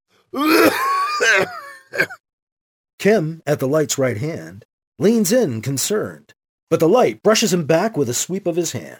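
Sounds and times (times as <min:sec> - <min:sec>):
speech: 0:00.3 - 0:01.6, 0:03.0 - 0:08.9
man clearing his throat: 0:00.4 - 0:02.2
red-faced man giving a dry raspy cough: 0:00.4 - 0:02.2.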